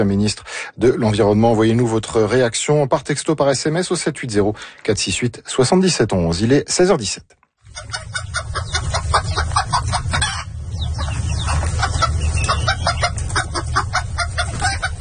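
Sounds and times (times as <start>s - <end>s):
speech: 0.0s - 8.4s
group of hens clucking: 7.6s - 14.9s
low rumbling background: 7.7s - 14.9s.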